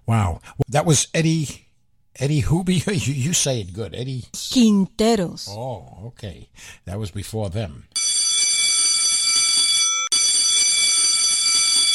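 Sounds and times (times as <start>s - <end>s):
speech: 0.1s - 1.6s, 2.2s - 8.0s
loud electric bell ringing with a bright metallic buzz: 8.0s - 11.9s.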